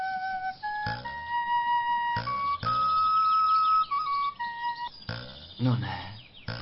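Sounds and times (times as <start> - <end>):
small whistle playing a simple tune: 0.0 - 5.0
speech: 5.6 - 6.0.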